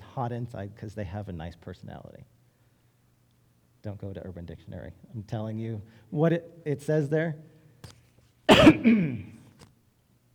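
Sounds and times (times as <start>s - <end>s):
speech: 0.2s - 2.4s, 3.8s - 8.0s, 8.6s - 9.4s
harsh cough from a person bothered by allergies: 8.5s - 9.5s.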